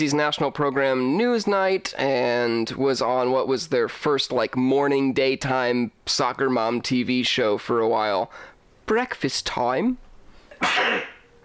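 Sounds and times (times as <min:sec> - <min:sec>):
speech: 0:00.0 - 0:10.0, 0:10.6 - 0:11.1
person sneezing: 0:10.5 - 0:11.3.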